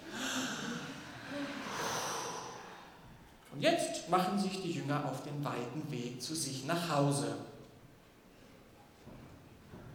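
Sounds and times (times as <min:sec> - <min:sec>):
deep breath in and out: 0:00.0 - 0:03.2
speech: 0:03.6 - 0:07.5.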